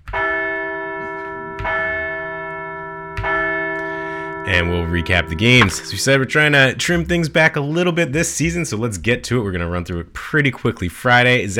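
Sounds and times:
large resonant bell struck to celebrate a baseball team's first win: 0.2s - 7.4s
speech: 4.5s - 11.5s.

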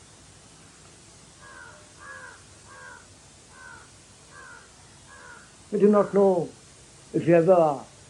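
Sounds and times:
faint hiss of noise: 0.0s - 8.0s
crow cawing: 1.4s - 6.3s
speech: 5.7s - 7.9s.

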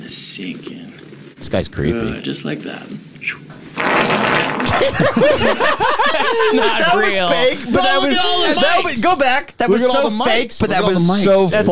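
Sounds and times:
speech: 0.1s - 3.4s, 4.1s - 11.7s
airy fart: 3.5s - 5.0s
laughter: 4.6s - 9.2s.

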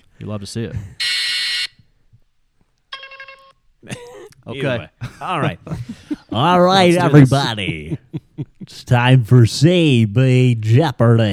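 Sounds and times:
speech: 0.2s - 1.0s, 4.5s - 11.3s
laughter: 0.6s - 1.0s, 3.8s - 9.6s
harsh noisy game show buzzer: 1.0s - 1.7s.

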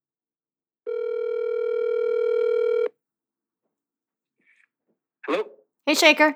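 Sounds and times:
steady telephone tone as a phone call is placed: 0.9s - 2.9s
speech: 5.3s - 6.3s.

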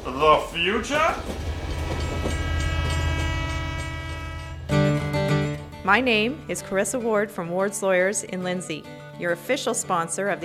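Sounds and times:
train rumbling past with dense low roar: 0.0s - 8.7s
speech: 0.2s - 1.5s, 5.9s - 10.4s
train horn blaring with sustained harmonic tones: 0.6s - 8.4s.

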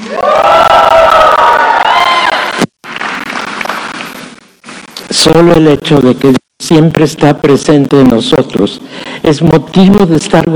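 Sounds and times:
large group of people shouting and cheering: 0.0s - 2.7s
speech: 5.3s - 10.5s.

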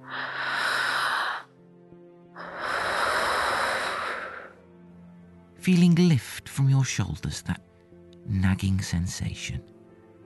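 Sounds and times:
deep cleansing breath: 0.0s - 1.6s, 2.4s - 4.6s
speech: 5.6s - 7.7s, 8.3s - 9.7s.

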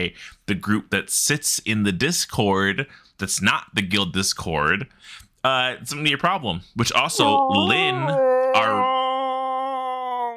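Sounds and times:
speech: 0.0s - 8.9s
person giving a very long yawn: 7.1s - 10.3s.

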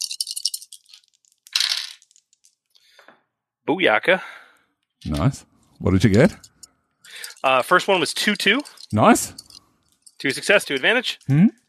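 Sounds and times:
dice rattling across a hard surface during a tabletop role-playing game: 0.0s - 2.7s, 5.9s - 11.4s
speech: 3.7s - 4.3s, 5.0s - 6.5s, 7.4s - 9.4s, 10.2s - 11.6s.

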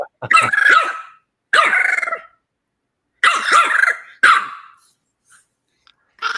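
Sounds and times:
golden retriever barking and yowling: 0.3s - 2.3s, 3.2s - 4.8s.

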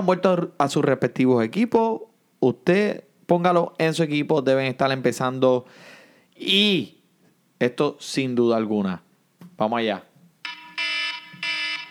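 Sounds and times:
speech: 0.0s - 7.0s, 7.6s - 10.1s
electronic alarm blaring in pulses: 10.4s - 11.8s.

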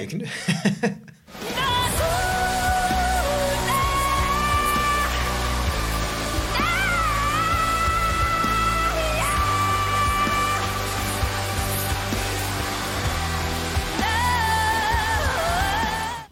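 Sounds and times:
speech: 0.0s - 1.4s
laughter: 0.2s - 1.2s
heavy rock song with thick low end and wailing bending lines: 1.4s - 16.3s.

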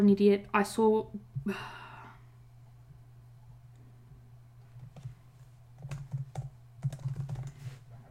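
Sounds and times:
speech: 0.0s - 1.8s
steady low electrical hum: 0.0s - 8.0s
breathy exhale: 1.5s - 2.2s
typing on a computer keyboard: 4.8s - 5.2s, 5.8s - 7.6s.

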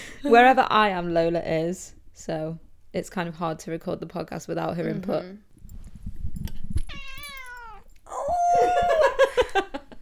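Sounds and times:
speech: 0.2s - 5.5s
cat meowing: 6.8s - 8.6s.

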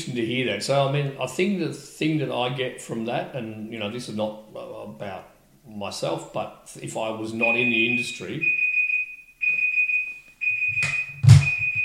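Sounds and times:
speech: 0.0s - 8.6s
electronic alarm beeping in a room: 7.4s - 11.8s
thump: 10.8s - 11.8s.

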